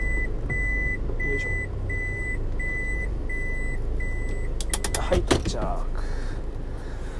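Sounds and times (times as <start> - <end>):
car warning chime beeping as the driver stops the car: 0.0 - 5.2
low constant car engine and road rumble: 0.0 - 7.1
speech: 5.1 - 6.2.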